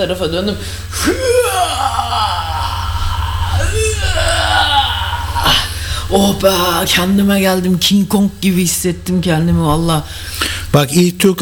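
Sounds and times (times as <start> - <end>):
speech: 0.0 - 1.4, 5.5 - 11.4
steady low hum: 0.0 - 11.2
person groaning and sighing while stretching: 1.0 - 6.9.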